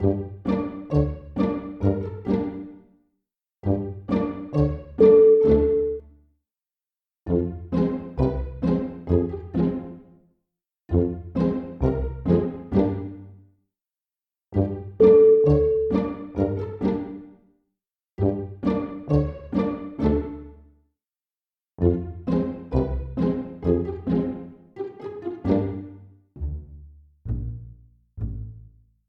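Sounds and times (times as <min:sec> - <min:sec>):
funny pizzicato: 0:00.0 - 0:02.8, 0:03.7 - 0:05.8, 0:07.3 - 0:10.0, 0:10.9 - 0:13.3, 0:14.6 - 0:17.2, 0:18.2 - 0:20.5, 0:21.8 - 0:28.8.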